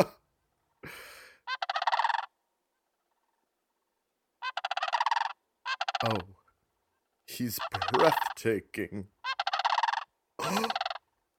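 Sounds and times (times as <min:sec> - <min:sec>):
sandhill crane squawking and squabbling: 0:01.4 - 0:02.4, 0:04.4 - 0:06.3, 0:07.0 - 0:08.4, 0:09.1 - 0:11.2
speech: 0:06.0 - 0:06.4, 0:07.4 - 0:09.2.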